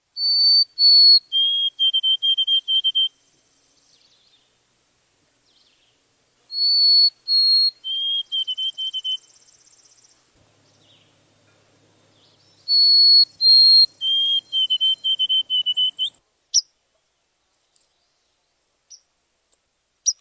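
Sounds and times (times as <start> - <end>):
White-throated Sparrow: 0.2 - 4.6, 5.4 - 16.8, 17.6 - 19.1.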